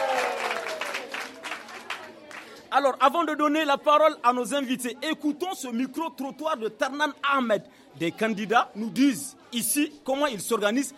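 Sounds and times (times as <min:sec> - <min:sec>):
audience applause at a school gathering: 0:00.0 - 0:02.5
speech: 0:02.8 - 0:10.9.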